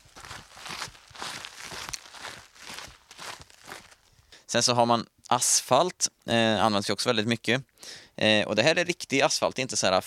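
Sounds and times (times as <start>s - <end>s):
footsteps on gravel: 0.0s - 4.2s
speech: 4.5s - 10.0s.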